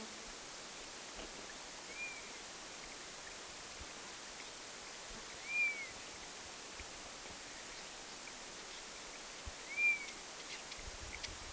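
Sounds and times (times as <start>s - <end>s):
faint hiss: 0.0s - 11.5s
honey buzzard whistled call: 1.9s - 2.3s, 5.4s - 5.9s, 9.7s - 10.1s.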